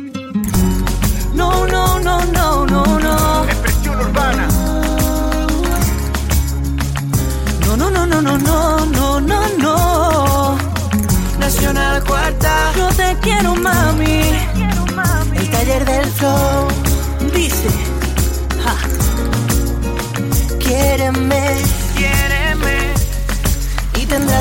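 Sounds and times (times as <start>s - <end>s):
upbeat pop song with thumping beat and bright synths: 0.0s - 24.3s
lead singer repeating a short chanted hook: 3.2s - 5.2s.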